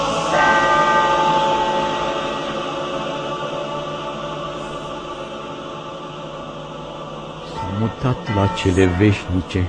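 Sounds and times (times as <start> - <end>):
church bells ringing: 0.2 - 5.8, 7.5 - 9.6
speech: 8.1 - 9.6.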